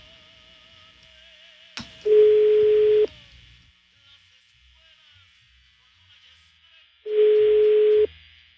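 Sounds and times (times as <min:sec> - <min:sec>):
quiet phone line hiss: 0:00.0 - 0:06.5
outgoing phone call ringback tone: 0:02.1 - 0:03.1, 0:07.1 - 0:08.1.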